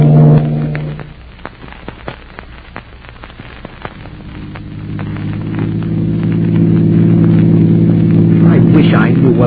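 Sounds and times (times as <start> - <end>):
car engine drone while driving: 0.0 - 1.3, 3.7 - 9.4
sharp cracks and pops: 0.0 - 9.4.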